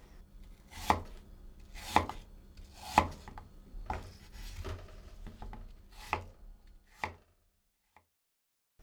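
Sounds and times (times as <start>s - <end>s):
knife chopping apple pieces on a cutting board: 0.7s - 4.4s.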